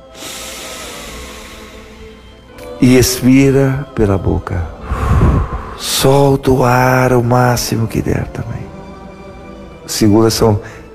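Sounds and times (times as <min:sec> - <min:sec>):
deep inhale through the nose during a guided breathing exercise: 0:00.0 - 0:02.6, 0:04.8 - 0:05.9
speech: 0:02.8 - 0:04.8, 0:05.8 - 0:08.6, 0:09.9 - 0:10.8.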